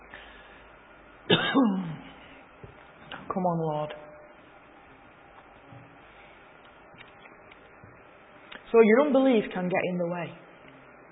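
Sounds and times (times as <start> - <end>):
preacher gruffly clearing throat: 1.3 - 2.2
preacher with throat trouble coughing: 1.3 - 2.2
speech: 3.4 - 4.1, 8.7 - 10.4.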